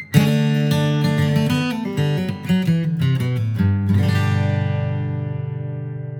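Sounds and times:
bluegrass flatpicked guitar lick resolving to a G chord: 0:00.0 - 0:06.1.

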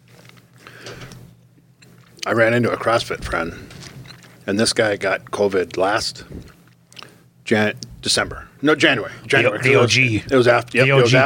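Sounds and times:
steady low hum: 0:00.0 - 0:10.3
wet chewing of a protein bar: 0:00.1 - 0:04.5, 0:05.2 - 0:07.2
speech: 0:02.2 - 0:03.8, 0:04.5 - 0:06.5, 0:07.5 - 0:11.2.

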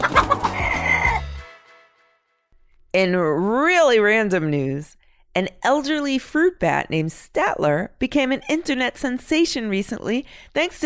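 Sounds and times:
chicken clucking and squawking: 0:00.0 - 0:01.2
speech: 0:02.9 - 0:10.8.

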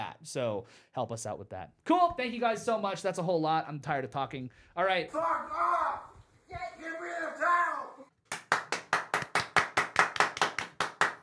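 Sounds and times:
speech: 0:00.2 - 0:07.6
hosts clapping hands: 0:08.2 - 0:11.2.

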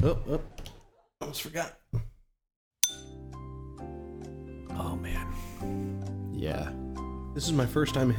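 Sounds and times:
speech: 0:00.0 - 0:00.7, 0:01.3 - 0:02.0, 0:04.8 - 0:08.1
glasses clinking in a toast: 0:02.8 - 0:03.2.

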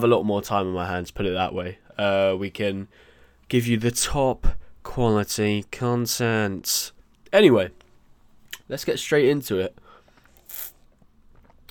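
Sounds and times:
speech: 0:00.0 - 0:07.8, 0:08.7 - 0:09.8
slurping sip of a soft drink: 0:10.1 - 0:11.6
quiet mouth noises: 0:10.3 - 0:11.0.

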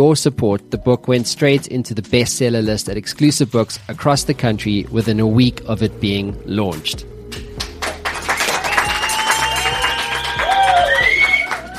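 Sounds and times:
speech: 0:00.0 - 0:07.2
crowd clapping: 0:07.4 - 0:11.7
crowd cheering: 0:08.0 - 0:11.7
crowd whistles: 0:08.4 - 0:11.7.

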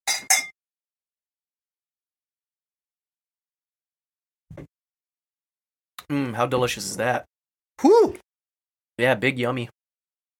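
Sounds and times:
drinking glasses clinking in a toast: 0:00.0 - 0:00.6
speech: 0:06.1 - 0:08.2, 0:09.0 - 0:09.8.

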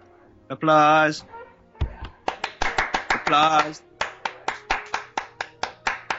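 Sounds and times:
hands clapping: 0:02.0 - 0:06.1.

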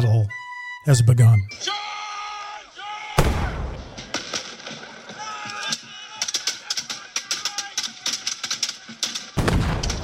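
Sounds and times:
speech: 0:00.8 - 0:01.9
musket shots at a battle reenactment on Lexington Green: 0:03.2 - 0:04.9, 0:06.2 - 0:10.0
quick sharp clicks and rattles: 0:05.6 - 0:10.0.

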